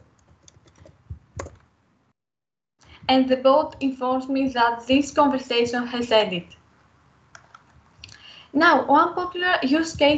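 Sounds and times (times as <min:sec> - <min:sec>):
quiet keystrokes on a computer keyboard: 0:00.0 - 0:01.7, 0:07.3 - 0:07.8
speech: 0:03.1 - 0:06.6, 0:08.6 - 0:10.1.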